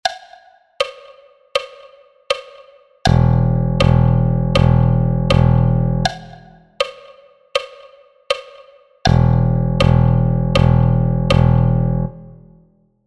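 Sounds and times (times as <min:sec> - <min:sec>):
electric bass playing quarter notes: 0:03.1 - 0:06.1, 0:09.1 - 0:12.5.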